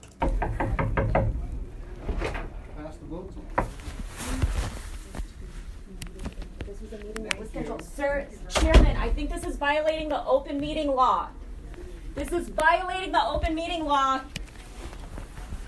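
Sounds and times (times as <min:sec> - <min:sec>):
reporter knocking on the door of a senators' meeting in Idaho: 0:00.2 - 0:01.6
voices: 0:01.1 - 0:15.6
shuffling: 0:01.8 - 0:08.2, 0:09.1 - 0:15.6
speech: 0:09.2 - 0:11.4, 0:12.2 - 0:14.4.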